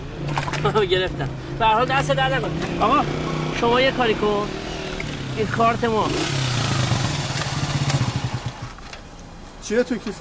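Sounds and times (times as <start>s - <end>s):
speech: 0.6s - 4.6s, 5.4s - 6.4s, 9.7s - 10.1s
motorcycle engine idling: 5.6s - 8.8s.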